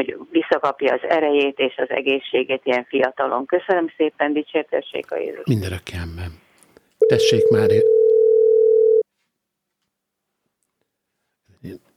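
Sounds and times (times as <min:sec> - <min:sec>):
speech: 0:00.0 - 0:06.4, 0:07.0 - 0:08.0, 0:11.6 - 0:11.9
telephone dial tone after a wrong call: 0:07.0 - 0:09.0.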